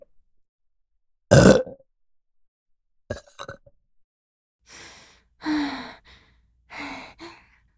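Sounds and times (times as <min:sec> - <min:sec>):
throaty burps: 0:01.3 - 0:01.8, 0:03.1 - 0:03.7
breathy sighs: 0:04.7 - 0:07.6.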